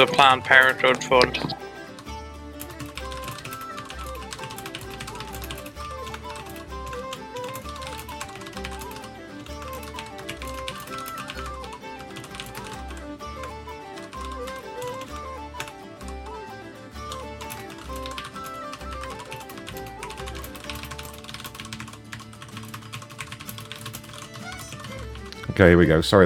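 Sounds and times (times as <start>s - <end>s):
speech: 0.0s - 1.6s, 25.6s - 26.2s
keyboard typing a text message: 2.6s - 13.1s, 14.0s - 15.8s, 17.1s - 25.5s.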